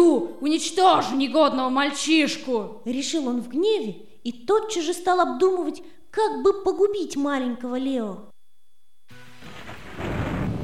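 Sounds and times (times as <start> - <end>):
speech: 0.4 - 8.3
thunder rolling in a storm: 9.4 - 10.6.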